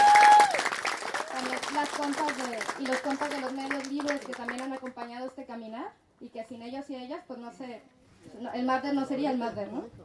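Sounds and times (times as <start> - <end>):
audience applause at an anniversary gathering of a social movement: 0.0 - 4.7
speech: 2.0 - 10.0.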